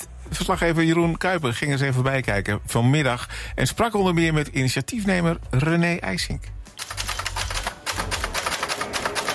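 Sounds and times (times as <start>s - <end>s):
speech: 0.2s - 6.9s
mechanical typewriter keys clacking: 6.8s - 9.3s.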